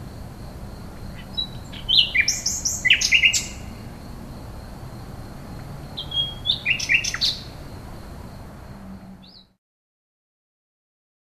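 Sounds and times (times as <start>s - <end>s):
common nightingale song phrase: 1.1s - 4.0s, 5.9s - 7.9s, 9.0s - 9.6s.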